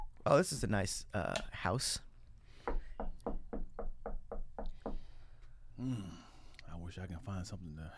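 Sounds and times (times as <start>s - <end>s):
speech: 0.2s - 2.1s, 6.9s - 7.9s
knocking on a house door: 2.7s - 5.0s.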